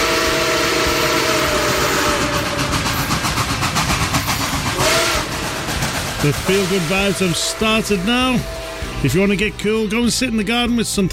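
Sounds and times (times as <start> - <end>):
steam train whistle: 0.0 - 3.3, 4.5 - 9.5
rumbling chugging rail noise: 0.0 - 11.1
speech: 6.2 - 11.1.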